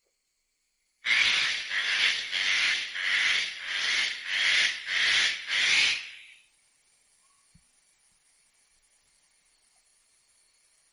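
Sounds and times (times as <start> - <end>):
eclectus parrot harsh raspy screeches: 1.1 - 6.3.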